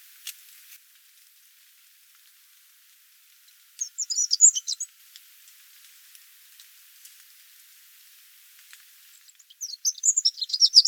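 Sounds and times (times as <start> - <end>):
Eurasian wren song, nominate subspecies troglodytes: 3.8 - 4.9, 9.2 - 10.8.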